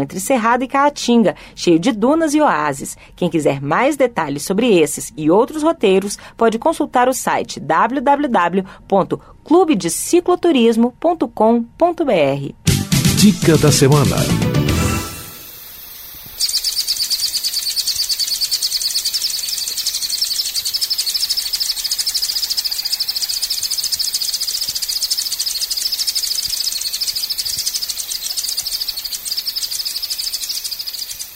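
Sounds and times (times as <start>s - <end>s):
speech: 0.0s - 12.6s, 13.2s - 14.6s
acrobata Acrobatornis fonsecai singing a rapid high-pitched trill: 16.4s - 31.3s.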